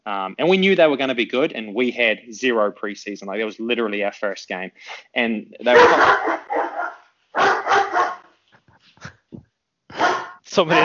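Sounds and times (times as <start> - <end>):
speech: 0.0 - 6.6, 10.6 - 10.8
dog barking: 5.7 - 8.3, 10.0 - 10.4
dog yipping and whining: 5.7 - 8.3
laughter: 10.0 - 10.8.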